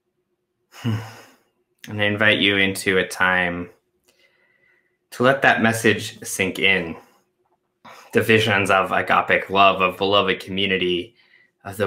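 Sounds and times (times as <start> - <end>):
deep breath drawn in: 0.7 - 1.4, 4.1 - 5.1, 11.1 - 11.6
speech: 0.8 - 1.2, 1.8 - 3.8, 5.1 - 7.1, 7.8 - 11.8.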